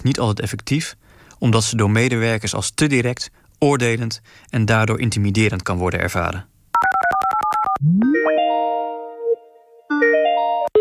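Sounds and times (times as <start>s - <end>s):
speech: 0.0s - 6.5s, 7.8s - 8.4s
rising electronic sweep: 7.8s - 9.7s
sustained chiming tones: 8.0s - 10.7s.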